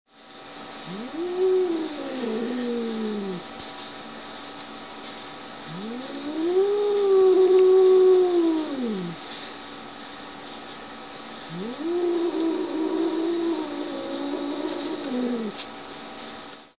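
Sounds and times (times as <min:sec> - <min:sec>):
growl: 0:00.8 - 0:03.4, 0:05.7 - 0:09.2, 0:11.5 - 0:15.6.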